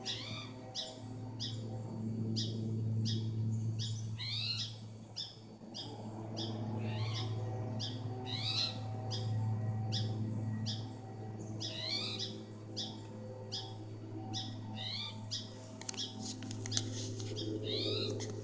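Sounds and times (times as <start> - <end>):
spotted towhee giving raspy upslurred calls: 0.0 - 1.6, 3.8 - 9.3, 11.6 - 13.7, 14.4 - 18.4
low droning hum: 0.0 - 18.4.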